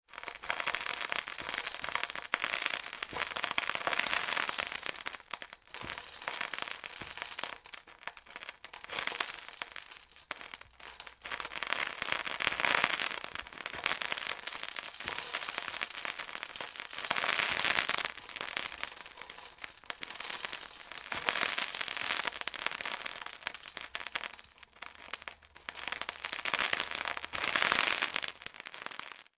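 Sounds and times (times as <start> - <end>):
sizzling: 0.0 - 29.3.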